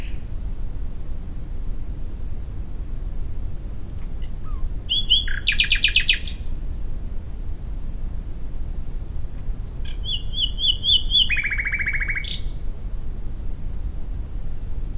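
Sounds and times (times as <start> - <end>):
common nightingale Luscinia megarhynchos singing: 0.0 - 0.3, 4.0 - 6.6, 9.6 - 12.6
low background hum: 0.0 - 14.9.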